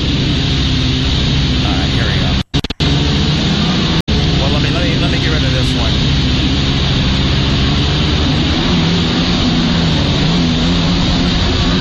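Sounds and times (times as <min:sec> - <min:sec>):
stand-up jet ski engine running: 0:00.0 - 0:11.7.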